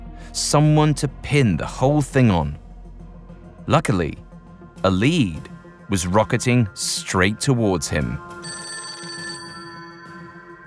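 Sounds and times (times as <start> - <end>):
speech: 0.3 - 2.6, 3.7 - 4.2, 4.8 - 8.4
old-style telephone bell ringing with a metallic trill: 8.4 - 10.6.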